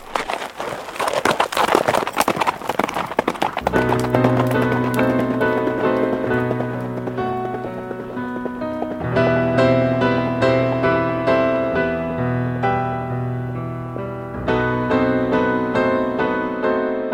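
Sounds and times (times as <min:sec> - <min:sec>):
horse hooves clip-clopping pulling a horse-drawn wagon: 0:00.0 - 0:11.4
sustained music: 0:03.6 - 0:17.0.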